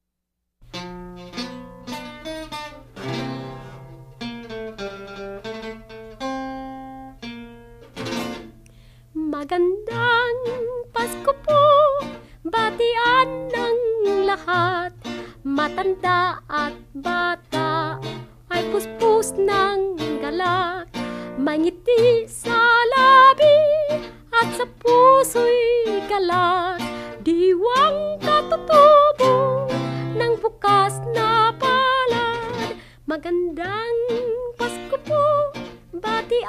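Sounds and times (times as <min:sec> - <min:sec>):
Filipino Christmas song: 0:09.1 - 0:36.4.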